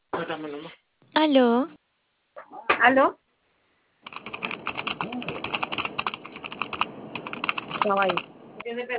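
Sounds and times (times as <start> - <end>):
speech: 0.2 - 1.8, 2.4 - 3.2, 7.8 - 8.9
fingers typing on a computer keyboard: 4.0 - 8.3
faint murmur: 4.1 - 6.8.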